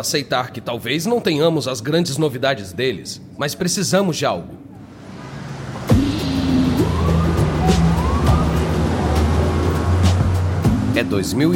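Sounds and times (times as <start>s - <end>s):
speech: 0.0s - 4.8s, 11.0s - 11.5s
siren wailing through city traffic: 4.7s - 11.5s
busy street traffic roaring at Columbus Circle in New York City: 4.8s - 11.5s.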